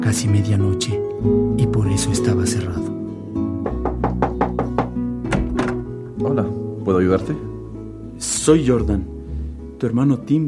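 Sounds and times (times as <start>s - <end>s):
speech: 0.1s - 3.0s, 7.1s - 7.5s, 8.5s - 9.2s, 9.8s - 10.4s
knuckles knocking on the door of a closed place to eat: 3.6s - 5.9s.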